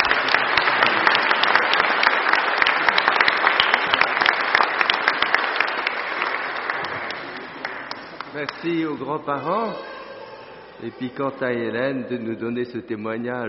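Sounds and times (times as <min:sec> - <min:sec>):
congregation clapping in a reverberant space: 0:00.0 - 0:09.7
speech: 0:08.4 - 0:10.0, 0:10.8 - 0:13.4.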